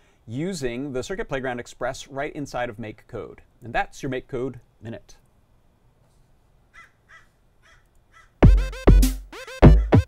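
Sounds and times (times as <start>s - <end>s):
speech: 0.3s - 5.2s
crow cawing: 6.7s - 8.4s.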